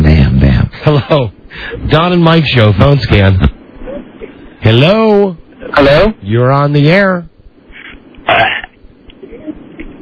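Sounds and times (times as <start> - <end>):
faint phone line hum: 0.0 - 10.0
speech: 0.9 - 3.6, 4.6 - 7.3
man burping on a phone call: 8.3 - 8.8.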